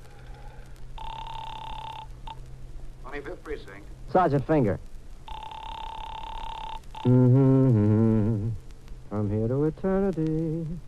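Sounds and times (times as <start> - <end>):
faint low hum: 0.0 - 10.8
telephone ringing through a handset: 1.0 - 2.4, 5.3 - 7.1
speech: 3.2 - 4.9, 7.0 - 7.6, 9.8 - 10.8.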